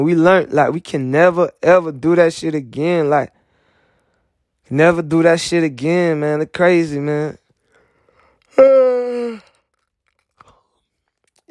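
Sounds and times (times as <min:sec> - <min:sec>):
speech: 0:00.0 - 0:03.4, 0:04.7 - 0:07.4, 0:08.6 - 0:09.5
person yawning: 0:08.5 - 0:09.7.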